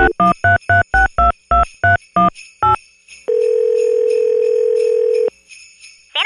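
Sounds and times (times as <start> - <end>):
touch-tone keypad beeps dialing a number: 0.0 - 2.8
steady loud telephone ringing tone: 3.3 - 5.3.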